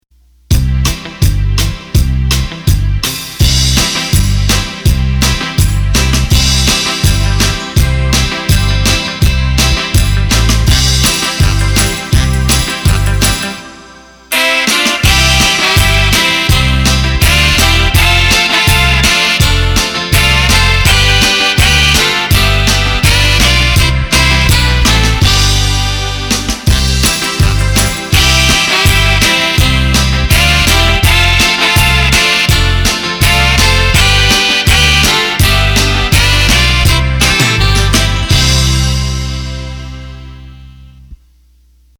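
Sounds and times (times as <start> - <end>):
country backing music from a Roland BK7m arranger: 0.5 - 41.2.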